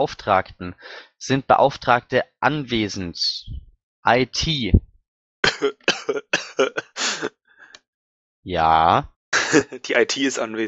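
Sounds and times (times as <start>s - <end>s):
speech: 0.0s - 4.9s, 5.6s - 7.4s, 8.4s - 10.6s
faint trailing breath: 0.8s - 1.2s
laughter: 5.4s - 7.3s, 9.4s - 10.6s
person coughing harshly: 5.4s - 7.3s, 9.4s - 9.8s.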